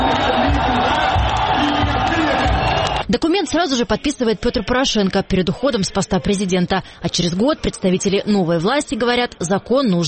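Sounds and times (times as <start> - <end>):
crowd outside a parliament building cheering and shouting in ovation: 0.0 - 3.1
speech: 3.1 - 10.0.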